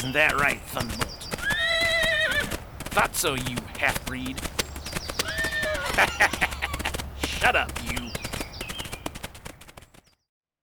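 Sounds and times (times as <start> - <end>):
speech: 0.0 - 1.1, 3.0 - 4.5, 6.0 - 6.6, 7.4 - 8.2
horse hooves clopping on a narrow road: 0.0 - 10.1
horse neighing: 1.4 - 2.6, 5.2 - 7.0
laughter: 5.8 - 7.6.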